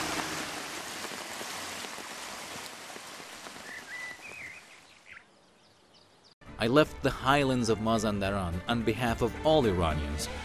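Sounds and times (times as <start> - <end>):
washed-out river water rushing over stones and mud in the highlands of Mazandaran province Iran: 0.0 - 4.7
thin bird whistles: 3.6 - 5.2
speech: 6.6 - 10.4.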